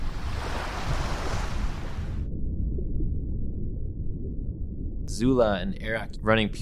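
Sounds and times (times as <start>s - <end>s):
roaring rush of crashing water: 0.0s - 4.2s
low churning underwater rumble: 0.0s - 6.5s
speech: 5.2s - 6.5s.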